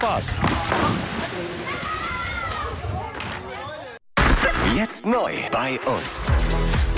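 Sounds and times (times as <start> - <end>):
speech: 0.0 - 1.8, 4.8 - 6.8
water sloshing and splashing at the Tuttenbrocksee lido in Beckum: 0.4 - 2.8
children shouting and playing at a lakeside swimming beach: 1.6 - 4.0.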